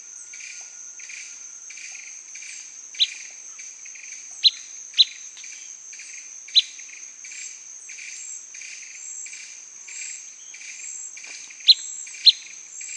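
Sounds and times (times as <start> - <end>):
steady high insect trill: 0.0 - 12.9
Blackish pewee pip calls: 3.0 - 3.3, 4.4 - 5.2.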